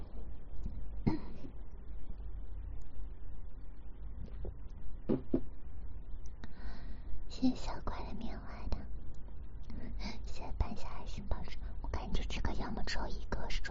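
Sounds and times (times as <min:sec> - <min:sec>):
low steady hum: 0:00.0 - 0:13.7
throat clearing: 0:01.1 - 0:01.4
person coughing: 0:01.1 - 0:01.5
speech: 0:07.4 - 0:08.2, 0:10.8 - 0:13.7.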